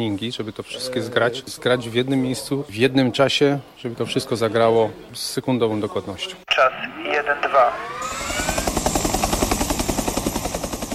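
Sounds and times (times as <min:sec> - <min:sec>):
speech: 0:00.0 - 0:08.3
military aircraft drone: 0:06.9 - 0:10.9.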